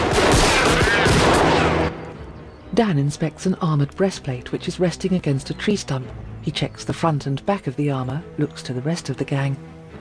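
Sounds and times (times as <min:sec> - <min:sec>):
gunfire from a gang shooting at makeshift armor in the bush: 0:00.0 - 0:01.8
speech: 0:02.8 - 0:09.7.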